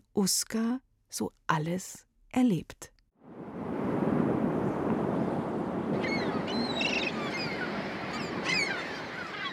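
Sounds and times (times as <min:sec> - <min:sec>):
speech: 0:00.2 - 0:02.9
strong wind roaring and buffeting: 0:03.2 - 0:09.5
churning surf crashing: 0:03.3 - 0:09.5
shrill seabird cries overhead: 0:05.9 - 0:09.5.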